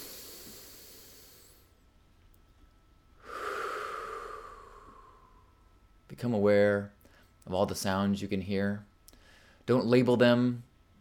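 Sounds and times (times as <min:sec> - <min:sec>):
deep breath during a guided mindfulness exercise: 0:00.0 - 0:01.7, 0:03.2 - 0:05.7, 0:09.1 - 0:09.6
speech: 0:06.2 - 0:08.9, 0:09.7 - 0:10.7.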